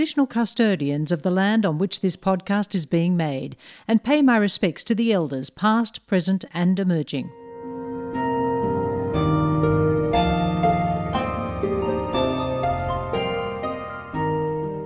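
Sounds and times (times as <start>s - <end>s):
speech: 0.0s - 7.4s
melodic music translated from the coronavirus spike protein: 7.4s - 14.8s.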